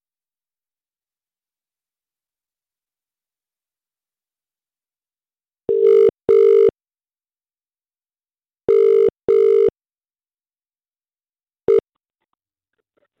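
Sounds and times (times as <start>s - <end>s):
outgoing phone call ringback tones: 5.7s - 6.7s, 8.7s - 9.7s.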